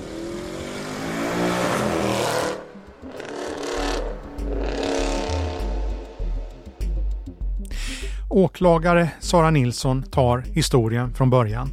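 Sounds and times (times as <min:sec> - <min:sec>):
510-horsepower Mercedes AMG sports car engine revving hard: 0:00.0 - 0:07.3
speech: 0:08.4 - 0:11.7.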